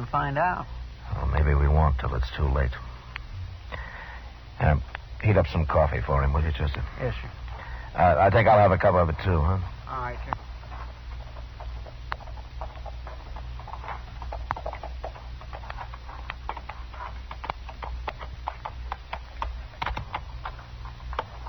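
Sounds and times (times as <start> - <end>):
low constant rumble: 0.0 - 21.4
speech: 0.1 - 2.9, 4.6 - 10.4
horse hooves clip-clopping as a rider arrives: 4.8 - 21.4.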